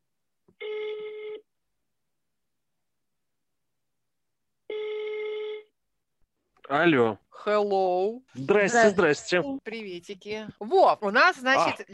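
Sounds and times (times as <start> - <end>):
speech: 0.5 - 1.0, 6.7 - 11.9
telephone ringback tones: 0.6 - 1.4, 4.7 - 5.7.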